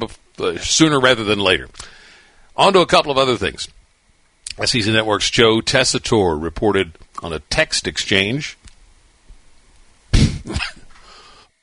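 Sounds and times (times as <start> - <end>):
speech: 0.0 - 2.0, 2.6 - 3.8, 4.6 - 8.6, 10.1 - 10.8
person coughing: 10.2 - 10.9.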